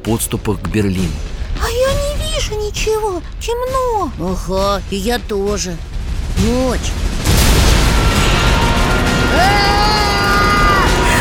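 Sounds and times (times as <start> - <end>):
speech: 0.1 - 1.4, 2.4 - 7.2
artillery barrage explosions: 1.2 - 11.2.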